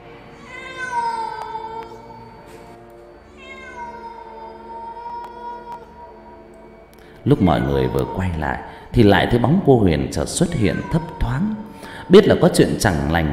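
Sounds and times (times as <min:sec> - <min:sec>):
cat meowing wildly in long wailing calls: 0:00.4 - 0:02.3, 0:03.3 - 0:06.3, 0:10.4 - 0:11.8
speech: 0:07.2 - 0:13.3.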